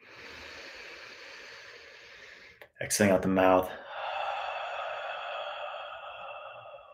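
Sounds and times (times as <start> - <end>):
long steady inhale through the nose: 0.0 - 2.6, 3.8 - 6.9
speech: 2.8 - 3.8.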